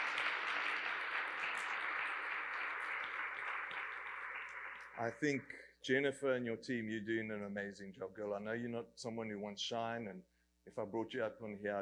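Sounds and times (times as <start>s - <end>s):
audience applause: 0.0s - 5.2s
speech: 5.0s - 11.7s.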